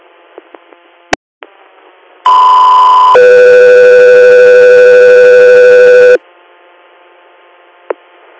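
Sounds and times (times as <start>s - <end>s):
radio dispatch two-tone alert: 2.3s - 6.2s.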